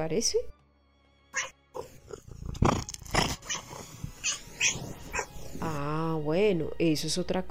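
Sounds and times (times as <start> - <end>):
speech: 0.0 - 0.6, 1.3 - 1.9, 5.6 - 7.4
domestic cat meowing and grumbling: 1.4 - 2.0, 3.4 - 5.3.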